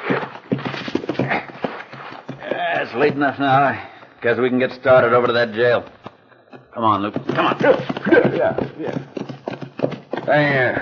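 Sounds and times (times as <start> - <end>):
horses' hooves clip-clopping: 0.0 - 10.8
speech: 2.8 - 6.0, 6.8 - 9.2, 10.3 - 10.8.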